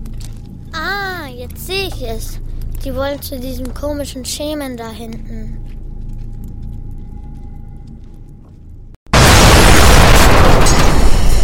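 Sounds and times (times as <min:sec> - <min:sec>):
speech: 0:00.8 - 0:05.7
artillery gun exploding after being hit: 0:09.1 - 0:11.4.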